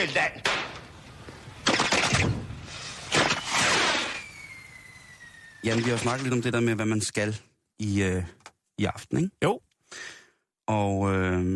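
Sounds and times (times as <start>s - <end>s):
speech: 0.0s - 0.6s, 5.6s - 11.5s
fireworks rockets crackling and exploding to ring in the New Year: 0.4s - 6.6s
faint firework whistling streak: 2.5s - 6.5s.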